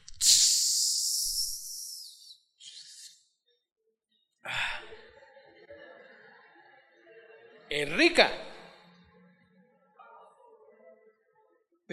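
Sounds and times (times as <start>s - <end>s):
voice imitating a Coca-Cola can opening with a fizzing hiss: 0.0s - 3.2s
laughter: 4.5s - 11.0s
speech: 7.7s - 8.4s.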